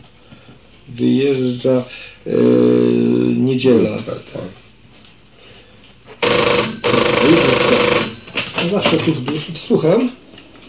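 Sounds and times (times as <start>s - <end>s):
speech: 0.9s - 4.5s, 8.7s - 10.2s
telephone bell ringing loudly: 6.2s - 8.7s.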